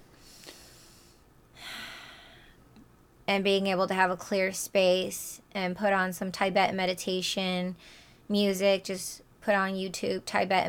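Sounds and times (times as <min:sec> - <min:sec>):
deep breathing in and out through nose: 0:00.1 - 0:02.6
speech: 0:03.3 - 0:10.6.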